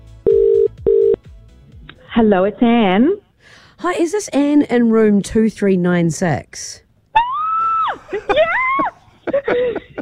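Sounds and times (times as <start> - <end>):
speech: 2.2 - 6.8
high-pitched excited screaming in a hotel room: 7.2 - 9.0
laughter: 8.0 - 9.9.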